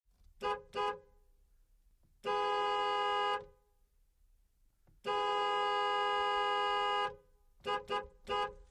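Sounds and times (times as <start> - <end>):
Chevrolet Aveo car horn: 0.4 - 1.3, 2.1 - 3.8, 4.9 - 8.6.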